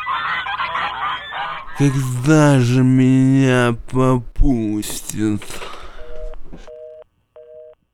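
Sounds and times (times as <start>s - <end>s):
flock of geese honking: 0.0s - 2.2s
speech: 1.8s - 5.7s.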